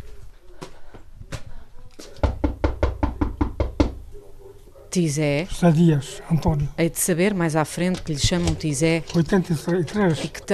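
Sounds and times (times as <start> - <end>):
knocking on a door: 2.2 - 4.0
speech: 4.9 - 10.5.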